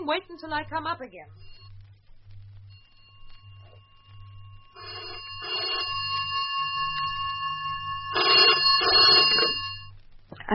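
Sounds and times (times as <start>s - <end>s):
steady low hum: 0.0s - 10.5s
speech: 0.1s - 1.6s
telephone bell ringing: 2.8s - 9.9s.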